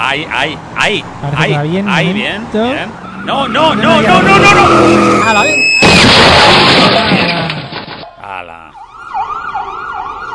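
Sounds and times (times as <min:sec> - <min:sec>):
speech: 0:00.1 - 0:07.4
vehicle engine roaring: 0:00.6 - 0:06.0
tires skidding as vehicle brakes hard: 0:02.8 - 0:08.0
wailing siren rising and falling: 0:03.0 - 0:05.8, 0:08.7 - 0:10.3.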